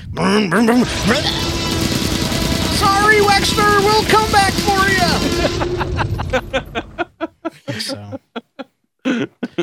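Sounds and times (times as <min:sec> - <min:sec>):
speech: 0:00.1 - 0:01.4, 0:02.8 - 0:07.0
voice imitating a truck pulling forward fast: 0:00.2 - 0:01.5, 0:02.7 - 0:05.7
laughter: 0:05.0 - 0:09.6.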